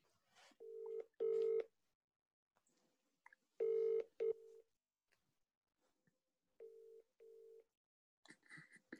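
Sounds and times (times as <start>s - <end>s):
ringback tone of an outgoing mobile phone call: 0.6s - 1.7s, 3.6s - 4.6s.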